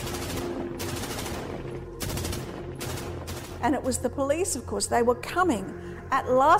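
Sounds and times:
loud bursts of rapid gunfire: 0:00.0 - 0:03.9
speech: 0:03.6 - 0:06.5.

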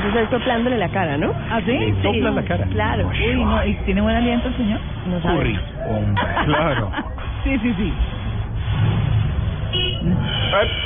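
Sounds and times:
low traffic rumble: 0:00.0 - 0:10.8
speech: 0:00.1 - 0:08.2, 0:10.0 - 0:10.8
laughter: 0:05.9 - 0:07.4
car horn honking: 0:09.7 - 0:10.8.

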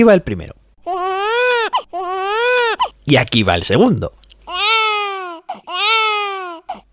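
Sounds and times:
speech: 0:00.0 - 0:01.1, 0:03.1 - 0:04.2
German baby crying with falling wails: 0:00.8 - 0:03.0, 0:04.5 - 0:06.9
German baby gasping breaths: 0:05.0 - 0:06.9.

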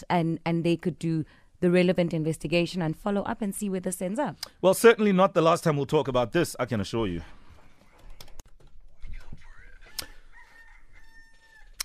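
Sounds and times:
speech: 0:00.0 - 0:07.4
rooster crowing: 0:09.8 - 0:11.8.

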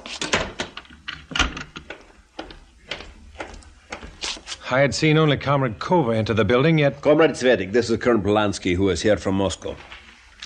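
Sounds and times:
door lock clicking and rattling: 0:00.2 - 0:02.0
speech: 0:04.7 - 0:09.9.

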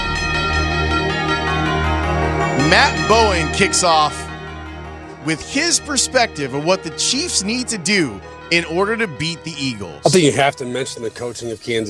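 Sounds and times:
bells ringing: 0:00.2 - 0:05.7
speech: 0:02.7 - 0:04.2, 0:05.2 - 0:11.8.

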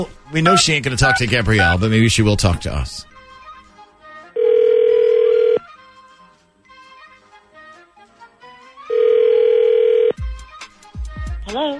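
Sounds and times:
speech: 0:00.0 - 0:03.1
soft music: 0:00.0 - 0:11.7
telephone ringback tone: 0:04.4 - 0:05.6, 0:08.9 - 0:10.2.

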